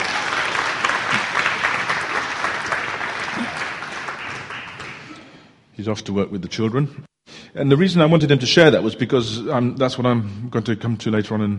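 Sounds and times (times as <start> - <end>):
congregation clapping: 0.0 - 5.4
speech: 5.8 - 11.5.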